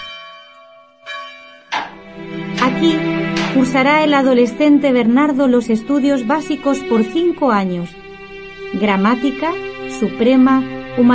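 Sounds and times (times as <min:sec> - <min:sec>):
old church bell tolling at a large school for novices and students: 0:00.0 - 0:07.8
speech: 0:02.0 - 0:08.1, 0:08.7 - 0:11.1.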